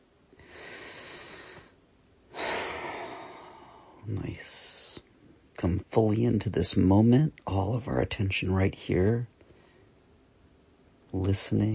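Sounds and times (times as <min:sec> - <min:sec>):
person taking a long deep breath: 0:00.4 - 0:04.1
speech: 0:04.1 - 0:04.8, 0:05.6 - 0:09.3, 0:11.1 - 0:11.7.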